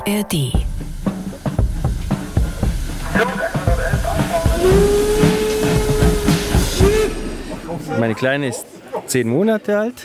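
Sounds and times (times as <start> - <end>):
speech: 0.1 - 0.6, 7.9 - 10.0
small miniature park steam train chuffing with rhythmic clatter: 0.3 - 8.1
long level whistle-like tone: 4.6 - 7.3.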